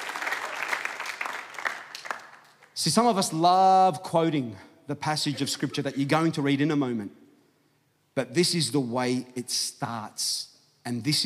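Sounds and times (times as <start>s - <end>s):
church congregation applauding during a sermon: 0.0s - 2.6s
speech: 2.8s - 7.2s, 8.2s - 11.2s.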